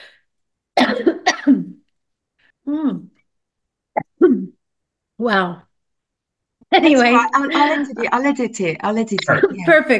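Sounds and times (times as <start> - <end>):
speech: 0.8 - 1.6, 2.6 - 3.2, 4.2 - 4.6, 5.2 - 5.7, 6.7 - 9.9
person coughing from a tickle in the throat: 0.8 - 1.8.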